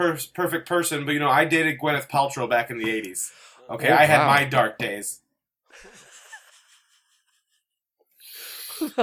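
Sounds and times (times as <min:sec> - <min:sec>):
speech: 0:00.0 - 0:05.2, 0:08.8 - 0:09.0
deep breathing exercise: 0:03.3 - 0:03.7
laughter: 0:03.8 - 0:04.7, 0:05.7 - 0:07.6.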